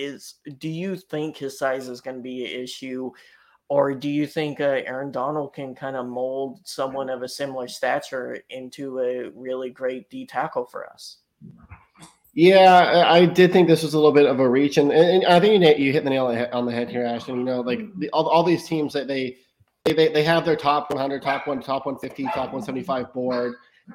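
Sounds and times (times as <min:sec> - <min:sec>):
speech: 0:00.0 - 0:23.9
dogs whimpering and whining: 0:16.9 - 0:17.9, 0:22.2 - 0:23.9
dogs barking in background: 0:21.2 - 0:23.6.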